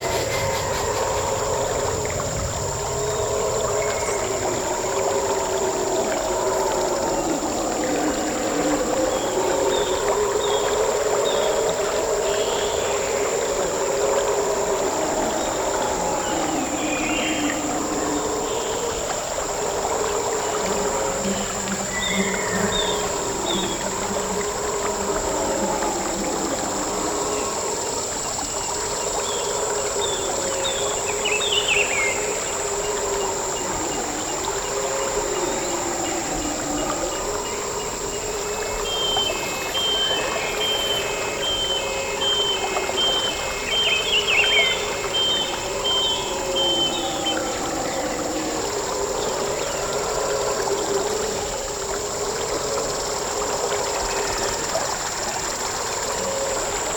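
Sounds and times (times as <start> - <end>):
rainforest insects: 0.0 - 56.9
rainforest river flowing: 0.0 - 56.9.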